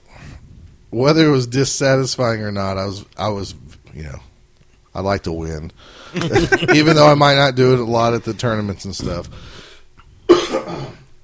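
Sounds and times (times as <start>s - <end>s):
speech: 0.9s - 4.3s, 5.0s - 9.6s
laughter: 6.2s - 7.2s
sharp raspy cough: 10.3s - 11.1s.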